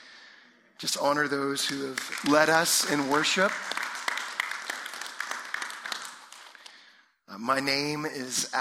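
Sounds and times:
speech: 0.8 - 3.8, 7.4 - 8.6
audience applauding: 1.6 - 6.8.

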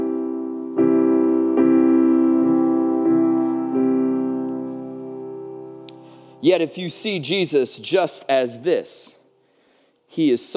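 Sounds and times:
sustained warm musical chord: 0.0 - 8.0
speech: 6.4 - 9.2, 10.1 - 10.5.

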